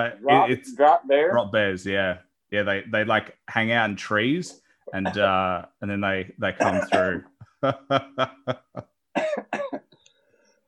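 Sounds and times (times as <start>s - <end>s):
speech: 0.0s - 9.8s
person in a coughing fit: 6.6s - 7.3s, 9.2s - 9.9s.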